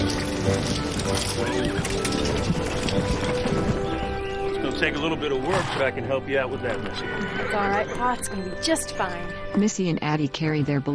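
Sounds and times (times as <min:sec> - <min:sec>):
horse whinnying: 0:00.0 - 0:04.7, 0:06.7 - 0:08.3
horse-drawn wagon rolling up to a house: 0:00.0 - 0:07.8
horse-drawn wagon hooves clattering: 0:00.0 - 0:08.4
speech: 0:00.5 - 0:03.8, 0:04.8 - 0:10.9.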